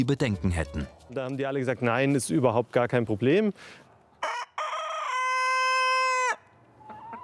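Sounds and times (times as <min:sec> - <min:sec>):
speech: 0:00.0 - 0:04.4
rooster crowing: 0:04.2 - 0:07.2.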